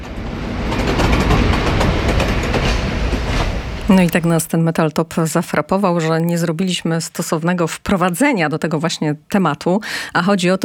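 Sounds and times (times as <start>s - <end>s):
train rumbling and rattling departing from track 35 at platform 7: 0.0s - 4.9s
speech: 3.9s - 10.6s.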